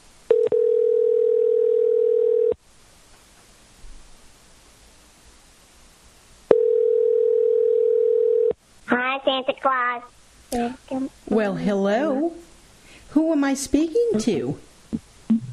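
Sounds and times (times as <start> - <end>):
faint phone line hiss and noise: 0.0 - 15.5
telephone dial tone while placing a call: 0.3 - 2.6, 6.5 - 8.5
speech: 9.4 - 12.4, 13.1 - 14.7.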